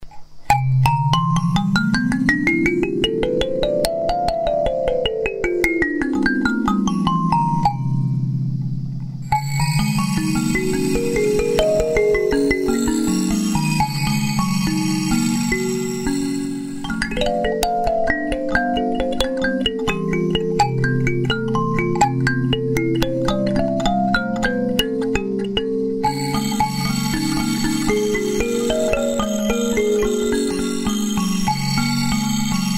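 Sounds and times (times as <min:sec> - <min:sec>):
kalimba: 0:00.0 - 0:32.7.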